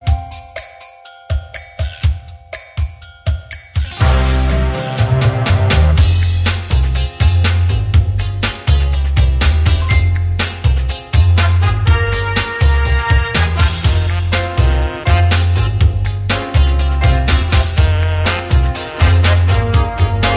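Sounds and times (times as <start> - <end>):
instrumental jazz: 3.8 - 20.3.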